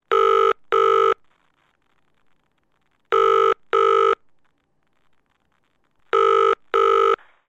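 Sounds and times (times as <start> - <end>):
UK household telephone ringing tone in earpiece: 0.1 - 1.2, 3.1 - 4.2, 6.1 - 7.2.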